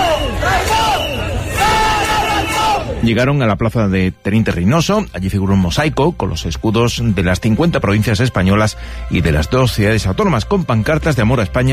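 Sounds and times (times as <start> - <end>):
crowd of protesters shouting for resignation: 0.0 - 3.0
speech: 3.0 - 11.7.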